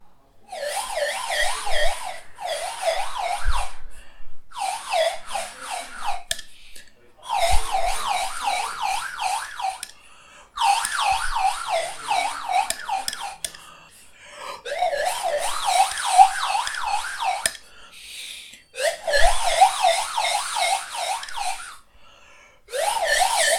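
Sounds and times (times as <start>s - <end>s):
siren whistle: 0.5s - 3.9s, 4.5s - 6.5s, 7.2s - 9.9s, 10.5s - 13.5s, 14.6s - 17.6s, 18.7s - 21.9s, 22.7s - 23.5s.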